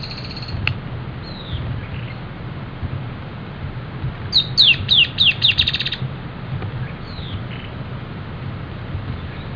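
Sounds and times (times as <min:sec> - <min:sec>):
Dusky-tailed antbird Drymophila malura song: 0:00.0 - 0:02.3, 0:04.3 - 0:06.1, 0:06.8 - 0:07.9, 0:08.7 - 0:09.5
low background hum: 0:00.0 - 0:09.5.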